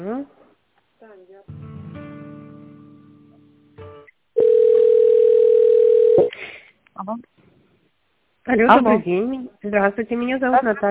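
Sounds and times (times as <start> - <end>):
telephone tones while a call is being transferred: 4.4 - 6.3
speech: 8.5 - 10.8.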